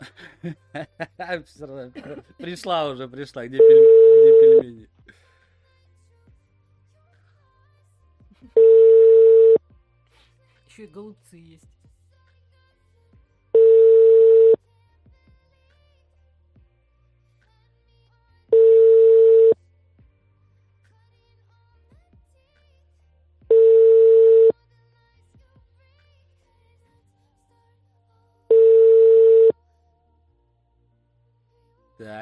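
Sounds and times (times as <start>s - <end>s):
speech: 0.4s - 5.2s, 10.8s - 11.8s, 32.0s - 32.2s
ringback tone of an unanswered phone call: 3.6s - 4.6s, 8.6s - 9.6s, 13.6s - 14.6s, 18.6s - 19.6s, 23.5s - 24.5s, 28.5s - 29.6s.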